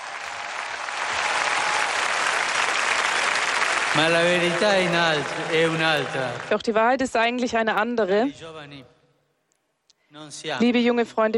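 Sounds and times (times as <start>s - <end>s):
big crowd of young people shouting and cheering: 0.0s - 6.5s
speech: 4.0s - 9.0s, 10.1s - 11.3s.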